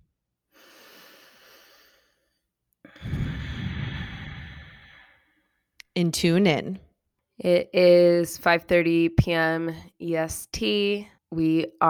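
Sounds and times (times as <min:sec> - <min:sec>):
deep breath in: 0:00.5 - 0:05.6
speech: 0:06.0 - 0:11.8.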